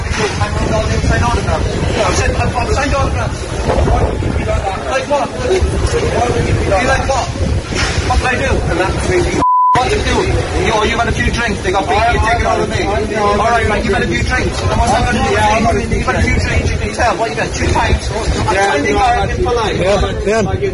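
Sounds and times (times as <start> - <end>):
loud rushing noise: 0.0 - 20.7
speech: 0.7 - 20.7
censor bleep over a word in a played recording: 9.4 - 9.9.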